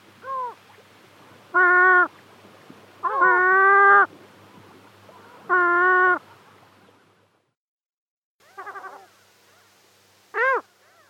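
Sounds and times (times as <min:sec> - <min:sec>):
Caspian gull Larus cachinnans calls: 0:01.5 - 0:02.1, 0:03.0 - 0:04.1, 0:05.1 - 0:06.2, 0:08.4 - 0:09.7, 0:10.4 - 0:11.0.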